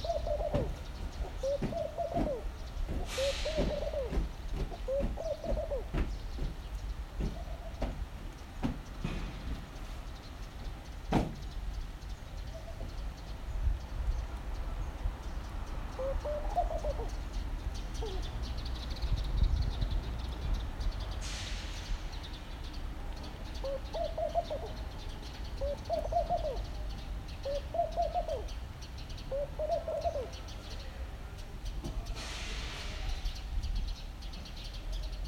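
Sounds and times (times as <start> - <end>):
laughing dove cooing: 0.0 - 6.1, 15.9 - 17.3, 17.9 - 18.4, 23.6 - 25.0, 25.6 - 28.6, 29.3 - 30.5
steady low traffic rumble: 0.0 - 35.2
hissy bursts: 3.0 - 4.3, 21.1 - 22.4, 32.0 - 33.6.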